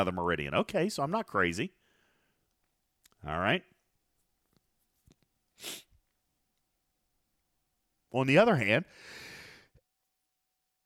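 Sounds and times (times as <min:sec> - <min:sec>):
speech: 0:00.0 - 0:01.8, 0:03.2 - 0:03.7, 0:05.6 - 0:05.9, 0:08.1 - 0:09.3
violent sneeze: 0:05.6 - 0:06.0.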